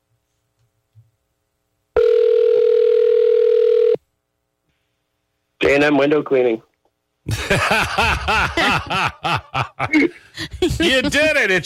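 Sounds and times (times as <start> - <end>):
phone outgoing ringing tone: 2.0 - 4.0
speech: 5.8 - 11.6
laughter: 7.3 - 11.6.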